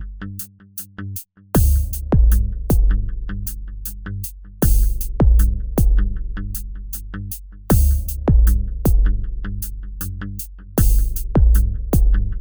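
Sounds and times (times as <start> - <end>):
punchy tuned hip hop bass drum hits: 1.6 - 3.3, 4.7 - 6.4, 7.7 - 9.4, 10.8 - 12.4.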